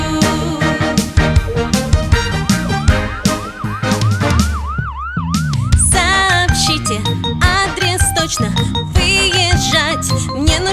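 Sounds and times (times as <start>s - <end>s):
busy upbeat musical backing: 0.0s - 10.7s
ambulance siren wailing in rising-and-falling sweeps: 2.9s - 6.4s.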